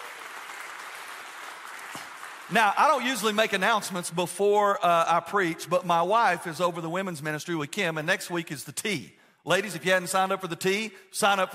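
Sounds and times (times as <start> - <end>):
crowd clapping in praise: 0.0 - 3.7
speech: 2.0 - 11.5.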